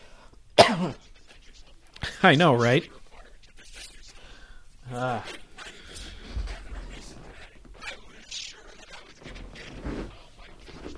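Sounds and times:
person coughing from a dry throat: 0:00.6 - 0:01.0
speech: 0:00.7 - 0:01.1, 0:02.2 - 0:03.0, 0:04.9 - 0:05.4.

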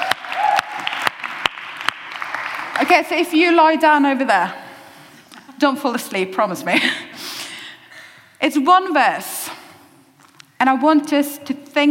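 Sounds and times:
audience applauding as a volunteer comes up at a church talk: 0:00.0 - 0:02.9
speech: 0:02.8 - 0:04.6, 0:05.6 - 0:07.0, 0:08.4 - 0:09.3, 0:10.6 - 0:11.8.

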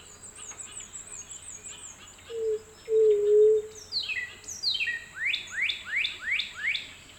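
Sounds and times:
songbirds with bright slurred whistles: 0:00.0 - 0:07.0
white-tipped dove cooing: 0:02.3 - 0:03.7.

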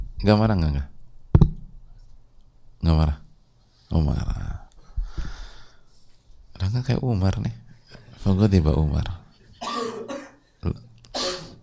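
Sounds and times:
speech: 0:00.2 - 0:00.9, 0:02.8 - 0:03.2, 0:03.9 - 0:04.6, 0:06.6 - 0:07.6, 0:08.2 - 0:09.2, 0:10.6 - 0:10.8
person coughing harshly: 0:09.6 - 0:10.5, 0:11.1 - 0:11.6.

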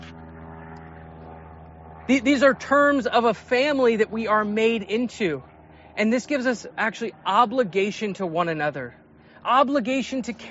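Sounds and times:
propeller airplane droning overhead: 0:00.0 - 0:10.4
speech: 0:02.1 - 0:10.4.

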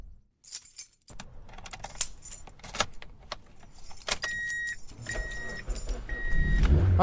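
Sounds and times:
car keys jangling: 0:00.5 - 0:06.1
faint beeps: 0:04.3 - 0:06.6
car engine starting and car pulling away: 0:06.0 - 0:07.0.

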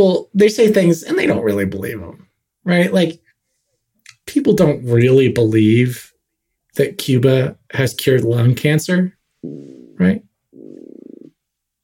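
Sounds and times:
speech: 0:00.0 - 0:03.2, 0:04.3 - 0:06.1, 0:06.8 - 0:10.2
stomach gurgling while digesting lunch: 0:09.4 - 0:10.0.

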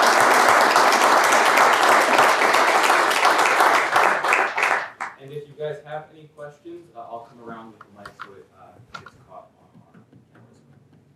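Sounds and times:
room full of people applauding: 0:00.0 - 0:05.2
speech: 0:05.7 - 0:09.5.

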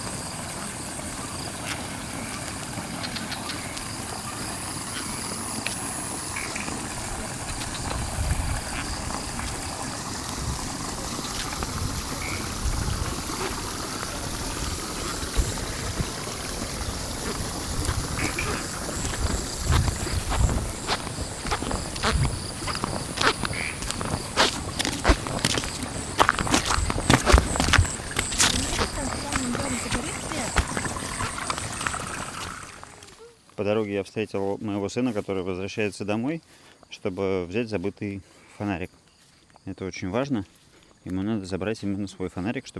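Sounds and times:
flowing paddy water: 0:00.0 - 0:33.5
evening cicadas droning by village rice paddies: 0:00.0 - 0:42.7
frogs by village rice paddies: 0:00.0 - 0:42.7
speech: 0:33.7 - 0:39.0, 0:39.6 - 0:42.7.

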